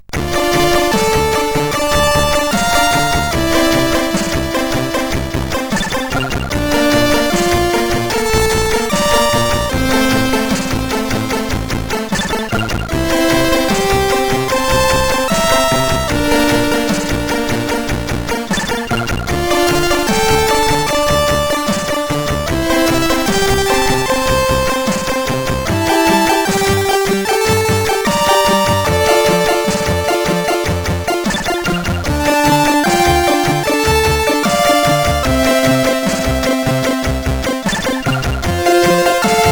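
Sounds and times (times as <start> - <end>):
MOS 8580 SID chip game music: 0.0 - 39.5.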